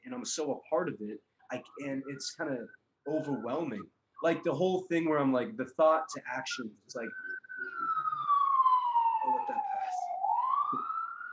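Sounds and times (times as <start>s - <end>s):
faint talk: 0.1s - 7.1s
speech: 0.2s - 7.2s
emergency vehicle siren passing by: 1.6s - 11.3s.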